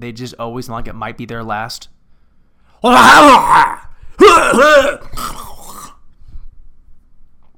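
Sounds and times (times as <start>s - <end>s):
speech: 0.0s - 2.0s, 2.8s - 5.4s
voice imitating an exaggerated theatrical dad cough and throat clearing: 4.2s - 6.0s.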